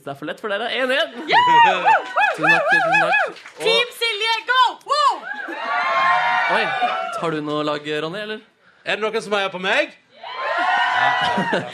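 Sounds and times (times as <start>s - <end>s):
speech: 0.0s - 5.6s, 6.5s - 10.0s, 11.0s - 11.7s
crowd of voices shouting and cheering: 1.2s - 7.5s, 10.1s - 11.7s
laughter: 10.5s - 11.7s.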